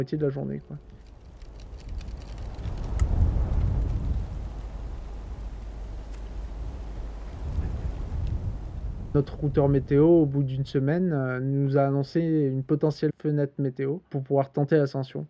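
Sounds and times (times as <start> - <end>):
speech: 0.0 - 1.1, 9.2 - 15.2
rain hissing in an afternoon thunderstorm at a mountain base camp: 0.6 - 11.0
deep rolling thunder at a mountain base camp: 0.9 - 10.9.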